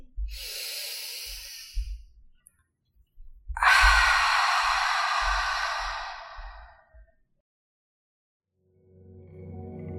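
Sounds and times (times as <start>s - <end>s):
deep breathing in and out: 0.1s - 2.1s, 3.6s - 6.8s.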